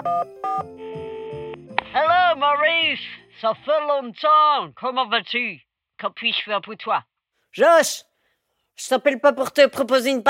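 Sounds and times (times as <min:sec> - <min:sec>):
telephone keypad tones beeping: 0:00.0 - 0:00.7
speech: 0:00.0 - 0:01.1, 0:01.9 - 0:08.1, 0:08.8 - 0:10.2.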